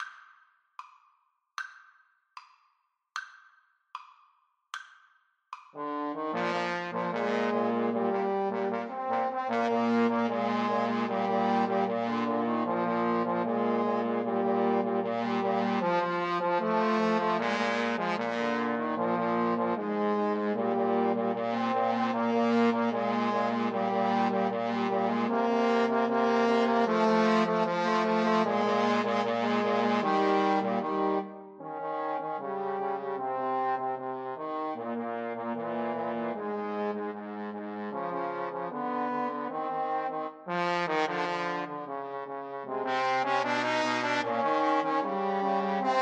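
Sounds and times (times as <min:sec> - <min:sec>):
trombone trio: 0:05.8 - 0:45.9.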